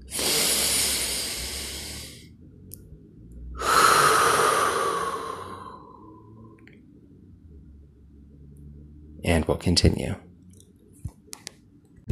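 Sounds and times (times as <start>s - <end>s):
deep breath in through the nose and mouth: 0.0s - 2.2s, 3.6s - 6.5s
speech: 9.3s - 10.3s.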